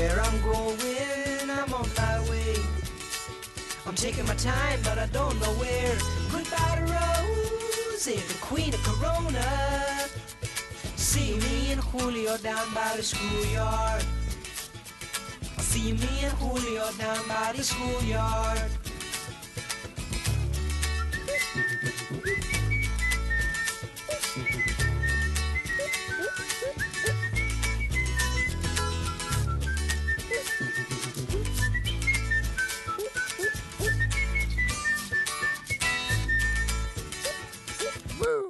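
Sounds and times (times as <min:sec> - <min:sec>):
upbeat full-band pop song with bass and drums: 0:00.0 - 0:38.3
speech: 0:04.0 - 0:10.0, 0:11.1 - 0:14.2, 0:15.8 - 0:18.8
bright whistled melody: 0:06.7 - 0:08.1, 0:20.8 - 0:38.0.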